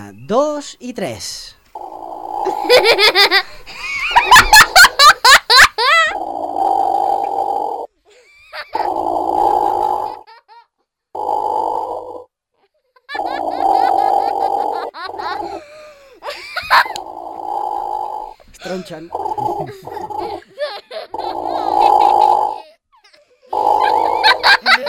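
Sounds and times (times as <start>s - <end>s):
speech: 0.1s - 1.6s, 2.4s - 4.6s, 18.7s - 20.5s
platypus grunting and squeaky chattering: 1.8s - 3.6s, 6.1s - 7.9s, 8.7s - 10.2s, 11.2s - 12.2s, 13.2s - 15.7s, 16.7s - 20.4s, 21.1s - 22.7s, 23.5s - 24.8s
laughter: 2.4s - 6.2s, 13.1s - 17.1s, 18.6s - 22.6s, 23.7s - 24.8s.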